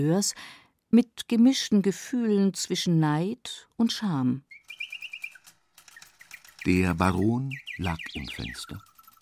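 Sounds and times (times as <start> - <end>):
speech: 0.0 - 4.5, 6.6 - 8.9
house sparrows chirping: 4.3 - 9.1.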